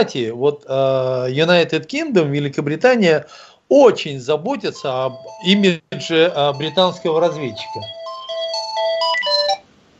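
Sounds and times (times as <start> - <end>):
speech: 0.0 - 8.0
electronic melodic ringing of a landline telephone: 4.6 - 9.6.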